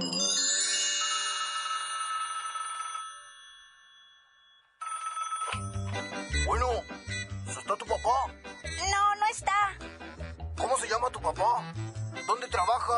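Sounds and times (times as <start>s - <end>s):
telephone bell ringing in a house: 0.0s - 8.7s
speech: 7.7s - 12.9s.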